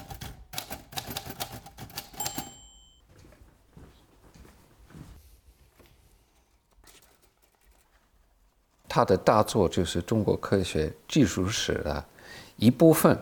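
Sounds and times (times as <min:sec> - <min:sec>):
typewriter keystrokes: 0:00.0 - 0:02.7
typewriter bell-like ring: 0:02.0 - 0:03.0
speech: 0:09.0 - 0:13.2.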